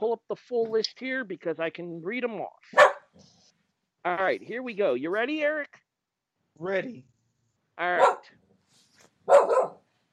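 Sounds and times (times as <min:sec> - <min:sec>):
speech: 0:00.1 - 0:03.4, 0:04.0 - 0:05.8, 0:06.6 - 0:07.1, 0:07.8 - 0:08.4, 0:09.3 - 0:09.8
dog barking: 0:02.7 - 0:03.1, 0:07.9 - 0:08.4, 0:09.2 - 0:09.9.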